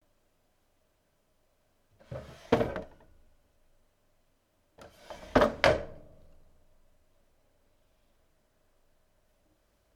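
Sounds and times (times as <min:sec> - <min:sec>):
drawer: 0:02.0 - 0:03.0, 0:04.8 - 0:06.0.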